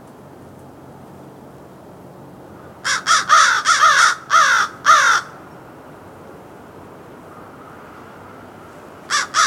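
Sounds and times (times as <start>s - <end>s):
American crow cawing: 2.8s - 5.4s, 9.1s - 9.4s.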